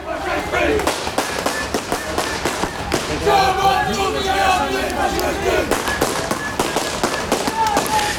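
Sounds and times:
dense crowd of voices at a counter-demonstration march: 0:00.0 - 0:08.1
people shouting at a counter-demonstration march: 0:00.0 - 0:08.1
firecracker bangs at an antifascist counter-demonstration in The Hague: 0:00.8 - 0:03.3, 0:05.6 - 0:08.1.

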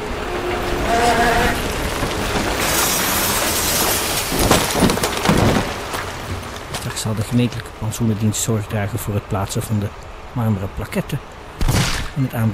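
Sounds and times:
heavy wheel loaders roaring back and forth: 0:00.0 - 0:08.6
speech: 0:07.0 - 0:12.5.

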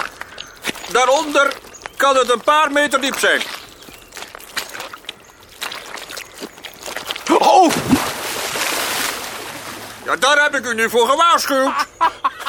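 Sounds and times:
squelching steps through a wet peat bog: 0:00.0 - 0:10.4
sloshing and wet churning of a person struggling in bog water: 0:00.0 - 0:10.7
speech: 0:00.9 - 0:03.6, 0:10.1 - 0:12.2
person plunging into a soggy bog: 0:04.2 - 0:10.2
laughter: 0:11.4 - 0:12.4.

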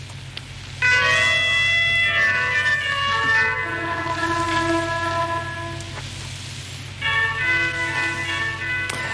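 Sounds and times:
constant shortwave static hiss: 0:00.0 - 0:09.1
bell-like chime melody of a shortwave radio station opening signal: 0:00.8 - 0:03.9, 0:07.0 - 0:09.1.

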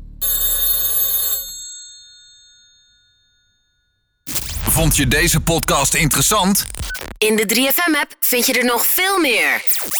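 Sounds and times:
old-style telephone bell ringing: 0:00.2 - 0:03.8
speech: 0:04.8 - 0:09.9.

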